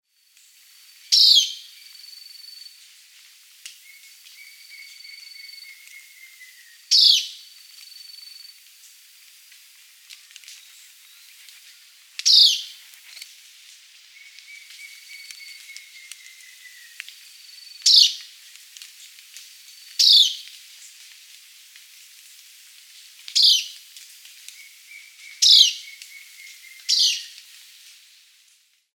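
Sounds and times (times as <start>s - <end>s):
Philydor atricapillum short alarm call: 1.1s - 1.8s, 3.9s - 7.4s, 12.3s - 12.7s, 14.2s - 18.2s, 20.0s - 20.4s, 24.6s - 27.4s.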